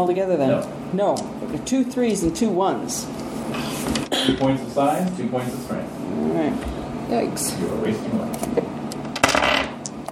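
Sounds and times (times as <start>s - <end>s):
speech: 0.0s - 8.7s
dice rolling on a hard table: 9.2s - 9.7s.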